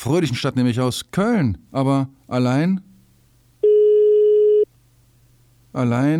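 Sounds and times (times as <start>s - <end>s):
speech: 0.0s - 2.9s, 5.8s - 6.1s
ringback tone of an unanswered telephone call: 3.6s - 4.7s.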